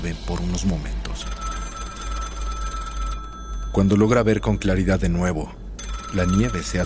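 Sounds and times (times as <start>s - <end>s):
speech: 0.0s - 1.4s, 3.7s - 6.8s
low hum: 0.0s - 6.8s
telephone ringing with a bright electronic trill: 1.2s - 5.0s, 5.8s - 6.8s.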